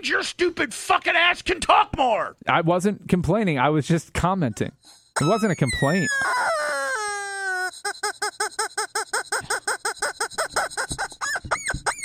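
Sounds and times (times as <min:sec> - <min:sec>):
speech: 0:00.0 - 0:06.6
squeaky rubber chicken dog toy squealing and honking: 0:05.2 - 0:12.0.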